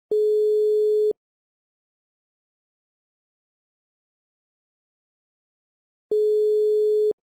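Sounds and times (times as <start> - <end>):
Portugal telephone ringback tone: 0.1 - 1.2, 6.1 - 7.2.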